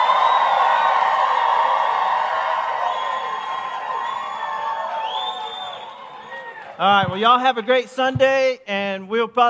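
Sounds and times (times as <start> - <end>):
high whoops: 0.0 - 6.8
large indoor church crowd cheering a greeting: 0.0 - 7.4
speech: 6.8 - 9.4.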